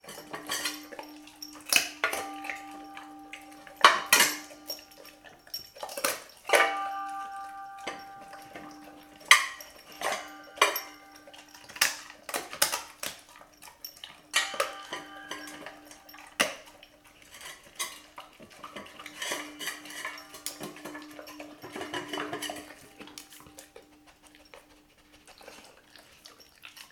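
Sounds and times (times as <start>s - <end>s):
labrador eating chicken bones in metal bowl: 0.0s - 26.9s.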